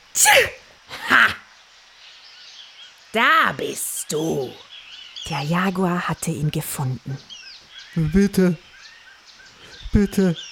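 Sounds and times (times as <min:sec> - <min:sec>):
sloth sneezing: 0:00.2 - 0:00.6
speech: 0:00.2 - 0:00.6, 0:03.1 - 0:04.7, 0:05.3 - 0:07.3, 0:07.9 - 0:08.7, 0:09.9 - 0:10.5.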